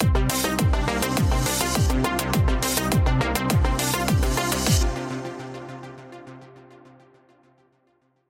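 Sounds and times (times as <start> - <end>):
synths and groove ident: 0.0 - 5.3.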